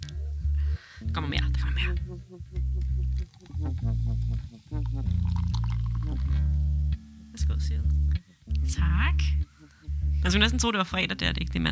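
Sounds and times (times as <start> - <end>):
speech: 1.1 - 6.8, 7.4 - 9.6, 10.2 - 11.6
beer pouring into a glass: 4.8 - 6.3.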